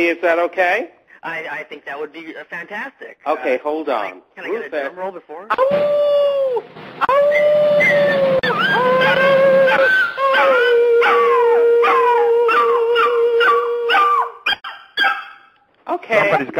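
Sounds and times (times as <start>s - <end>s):
speech: 0.0s - 8.2s, 16.0s - 16.5s
male dachshund howling in long wavering notes: 5.5s - 15.2s.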